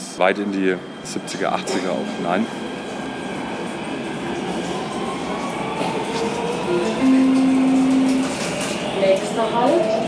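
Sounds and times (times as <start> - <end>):
subway train interior rumbling in motion in Nuremberg city centre: 0.0 - 10.0
speech: 0.2 - 2.8, 9.1 - 10.0.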